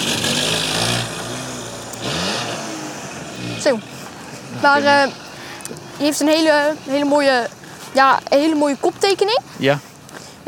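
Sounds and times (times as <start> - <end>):
car driving past with engine rumbling: 0.0 - 6.0
speech: 3.6 - 4.0, 4.6 - 10.4.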